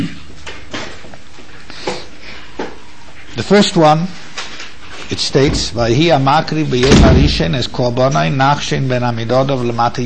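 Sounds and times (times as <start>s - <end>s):
speech: 3.4s - 4.2s, 5.1s - 10.0s
door being pushed shut with dull clunks and knocks: 6.8s - 7.5s.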